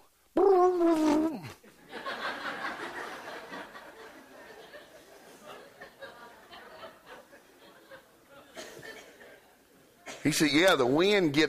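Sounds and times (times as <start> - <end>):
person imitating a hunting dog baying: 0.3 - 1.6
group of listeners laughing: 1.4 - 9.8
speech: 10.2 - 11.4.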